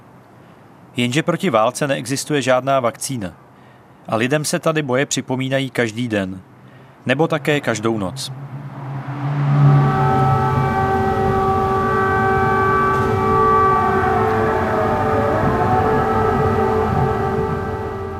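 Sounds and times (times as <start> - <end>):
speech: 1.0 - 8.4
low rumbling background: 7.0 - 18.1
air raid sirens outside the window: 7.1 - 18.1.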